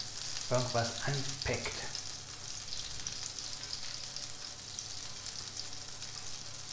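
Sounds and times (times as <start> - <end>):
butter melting and sizzling in a frying pan: 0.0 - 6.7
speech: 0.5 - 2.0.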